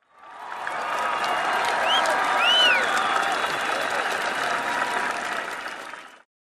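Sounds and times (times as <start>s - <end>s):
cheering: 0.0s - 6.3s
crowd applauding: 0.0s - 6.3s
rising-and-falling whistles: 0.7s - 3.8s.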